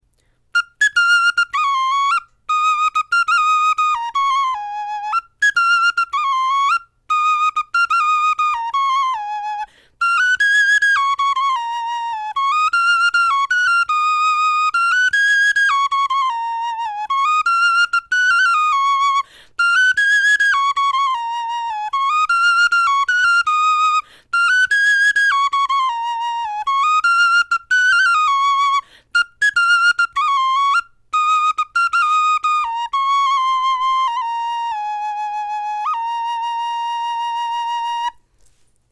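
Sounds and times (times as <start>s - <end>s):
bone flute melody: 0.5s - 38.2s.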